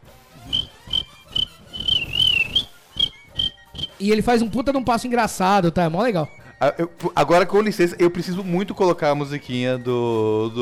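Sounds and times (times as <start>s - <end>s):
shrill whistle blown while dancing at a party: 0.4s - 4.0s
party music: 0.5s - 4.0s
speech: 4.0s - 10.6s.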